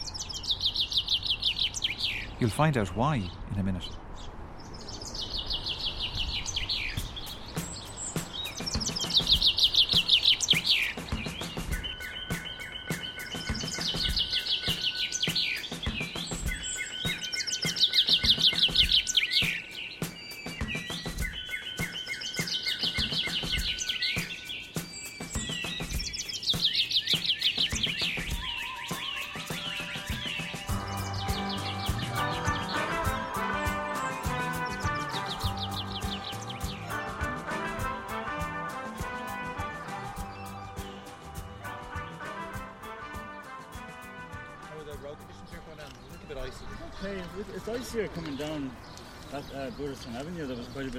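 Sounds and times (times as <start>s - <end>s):
bird song with bright whistled phrases: 0.0s - 37.0s, 39.8s - 42.0s, 45.5s - 50.9s
busy chorus of other bird chirps: 0.0s - 50.9s
speech: 2.4s - 4.0s.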